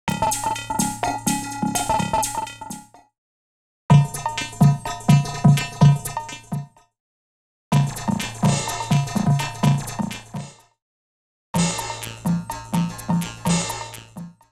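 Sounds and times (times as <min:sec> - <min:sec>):
electro music at 126 bpm: 0:00.1 - 0:03.0, 0:03.9 - 0:06.8, 0:07.7 - 0:10.6, 0:11.6 - 0:14.4.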